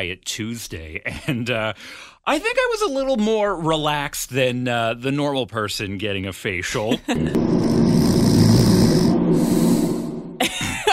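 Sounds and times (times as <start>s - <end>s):
speech: 0.0s - 8.0s
laughter: 6.8s - 7.4s, 10.4s - 10.9s
person snoring during a facial: 7.2s - 10.1s
short snort: 8.0s - 10.0s.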